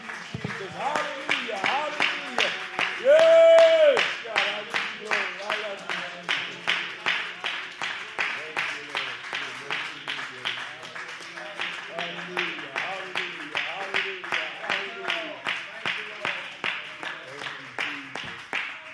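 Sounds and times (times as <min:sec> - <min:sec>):
church audience clapping hands in a rhythmic beat: 0:00.0 - 0:18.9.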